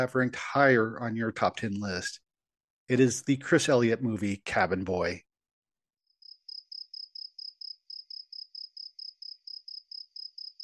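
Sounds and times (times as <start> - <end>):
speech: 0.0 - 2.2, 2.9 - 5.2
cricket chirping: 6.2 - 10.6.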